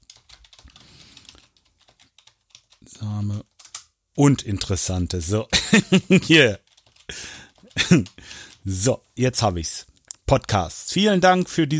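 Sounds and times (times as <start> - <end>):
faint rapid typing on a computer keyboard: 0.0 - 3.9, 6.6 - 8.7
speech: 2.8 - 3.5, 4.2 - 7.2, 7.9 - 11.7
laughter: 5.5 - 6.5, 7.8 - 8.2.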